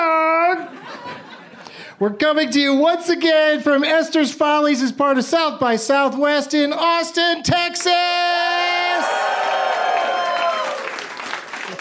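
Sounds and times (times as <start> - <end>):
laughter: 0.5 - 1.8
speech: 2.0 - 8.5
people whooping and calling out: 8.6 - 11.7
audience clapping: 8.9 - 11.7.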